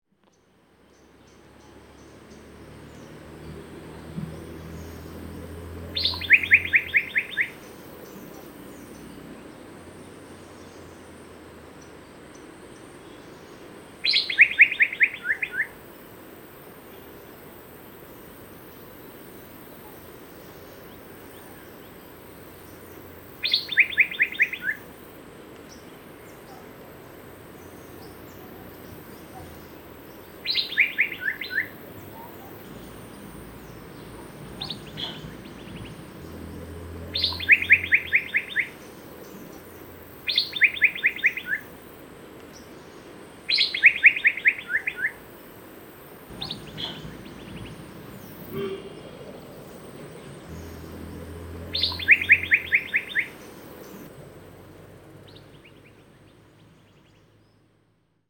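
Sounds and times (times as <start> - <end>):
Asian fairy-bluebird calling: 4.0 - 9.0, 14.0 - 15.8, 19.8 - 25.0, 25.6 - 41.9, 43.5 - 45.3, 46.3 - 54.1.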